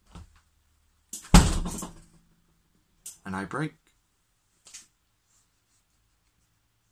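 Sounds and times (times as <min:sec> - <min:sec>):
door slamming shut: 0:01.2 - 0:02.1
speech: 0:03.3 - 0:03.8
faint shuffle: 0:04.4 - 0:06.9.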